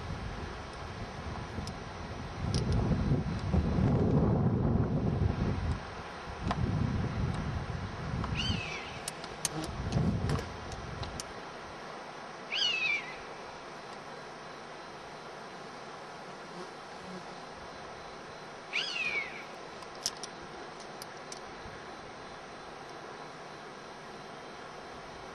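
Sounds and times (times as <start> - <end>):
gusty low wind noise: 0.0 - 11.2
European honey buzzard anger calls in Hexhamshire: 12.5 - 13.2, 18.7 - 19.4.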